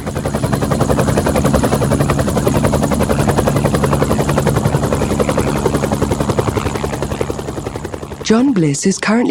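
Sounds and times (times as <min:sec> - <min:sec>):
helicopter rotor chopping: 0:00.0 - 0:09.2
speech: 0:08.3 - 0:09.2.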